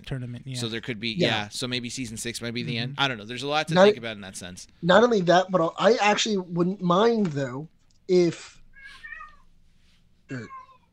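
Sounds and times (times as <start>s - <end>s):
speech: 0.1s - 8.6s, 10.3s - 10.6s
cat yowling outside: 8.8s - 9.5s, 10.3s - 10.9s.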